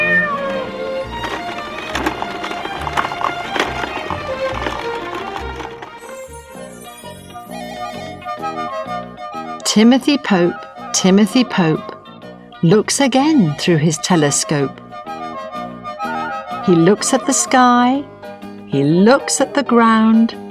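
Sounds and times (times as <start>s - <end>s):
cat meowing: 0.0s - 0.8s
lively musical backing: 0.0s - 8.5s
speech: 9.8s - 11.9s, 12.6s - 14.8s, 16.7s - 18.1s, 18.7s - 20.4s.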